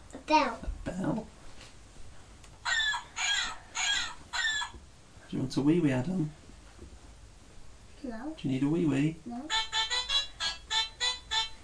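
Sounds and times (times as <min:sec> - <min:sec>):
speech: 0:00.3 - 0:01.3, 0:05.5 - 0:06.4, 0:08.0 - 0:09.6
electronic hen clucking from a toy sound button: 0:02.6 - 0:04.8, 0:09.5 - 0:11.6.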